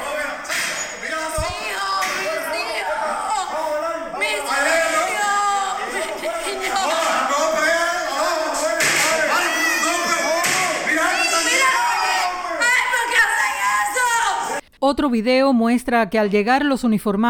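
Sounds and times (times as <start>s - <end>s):
laughter: 0.0s - 12.7s
children crying: 0.0s - 14.6s
people shouting: 0.0s - 14.6s
woman screaming: 1.3s - 7.0s, 9.3s - 10.3s, 10.9s - 14.6s
speech: 14.9s - 17.2s.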